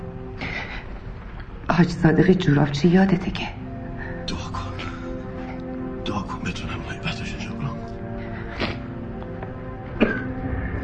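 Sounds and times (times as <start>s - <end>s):
speech: 1.8s - 3.6s
man coughing: 10.0s - 10.4s.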